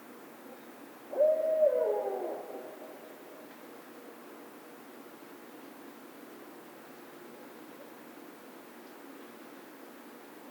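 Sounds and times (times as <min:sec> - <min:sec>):
barred owl low hoot: 0:01.1 - 0:03.2.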